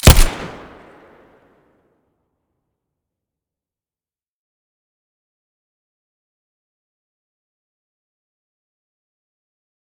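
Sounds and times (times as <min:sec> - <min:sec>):
Colt 1911 pistol muzzle blast: 0:00.0 - 0:01.0.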